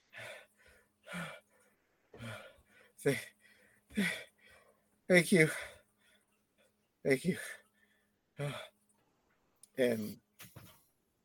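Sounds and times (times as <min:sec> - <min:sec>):
turtle gasping heavily for air: 0:00.0 - 0:06.3, 0:07.4 - 0:08.8
speech: 0:03.0 - 0:03.3, 0:04.0 - 0:04.2, 0:05.1 - 0:05.7, 0:07.0 - 0:07.6, 0:08.4 - 0:08.7, 0:09.8 - 0:10.7.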